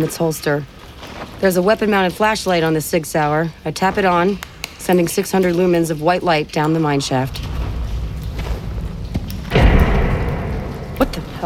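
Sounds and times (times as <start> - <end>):
speech: 0.0 - 7.6
low rumbling: 7.4 - 11.4
heavy door slamming shut in a mine corridor: 9.5 - 11.4.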